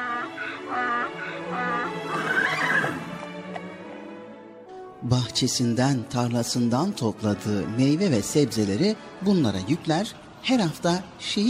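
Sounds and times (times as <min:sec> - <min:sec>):
horse whinnying in a long quavering neigh: 0:00.0 - 0:03.2
speech: 0:05.0 - 0:11.4.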